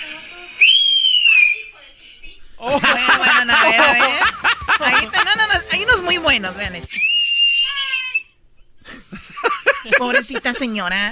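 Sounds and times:
catcall whistle aimed at a woman: 0.6 - 1.7, 6.9 - 8.4
speech: 2.6 - 4.0, 5.7 - 7.1, 9.9 - 11.1
laughter: 2.6 - 7.0, 8.9 - 10.5.

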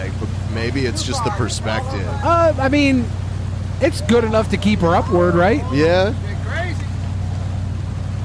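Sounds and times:
boat engine revving: 0.0 - 8.2
speech: 0.6 - 3.2, 3.8 - 6.4.

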